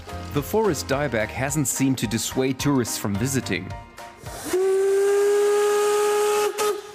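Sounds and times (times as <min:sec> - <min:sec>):
speech: 0:00.4 - 0:04.6
narrow gauge steam locomotive whistle: 0:04.3 - 0:06.9.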